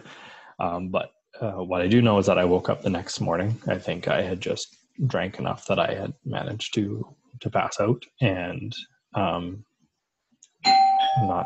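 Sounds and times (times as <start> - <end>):
speech: 0.6 - 9.7, 10.6 - 11.4
doorbell ringing: 10.6 - 11.4.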